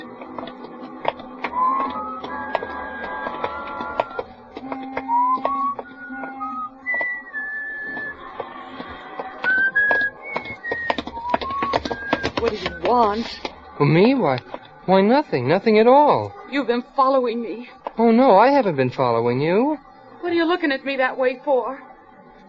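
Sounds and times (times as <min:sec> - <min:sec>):
footstep-like taps in a walking rhythm: 0:00.0 - 0:13.6
person whistling a wandering tune: 0:01.5 - 0:04.2, 0:05.0 - 0:08.2, 0:09.4 - 0:13.0
speech: 0:12.9 - 0:21.9.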